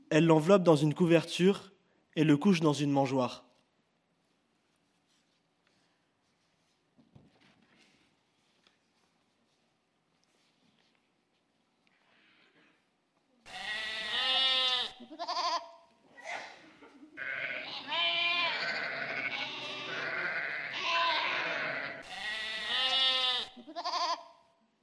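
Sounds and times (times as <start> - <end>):
speech: 0.1 - 3.5
sheep bleating: 13.5 - 15.8, 17.2 - 24.4.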